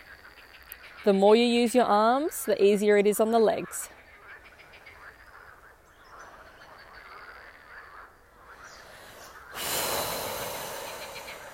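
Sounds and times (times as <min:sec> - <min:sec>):
speech: 0:01.0 - 0:03.9
heavy exaggerated breathing during exercise: 0:08.6 - 0:11.5.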